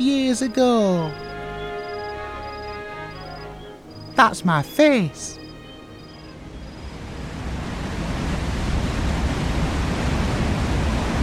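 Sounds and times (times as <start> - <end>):
speech: 0.0 - 1.3, 4.2 - 5.4
roar of rushing water at top of waterfall: 5.7 - 11.2.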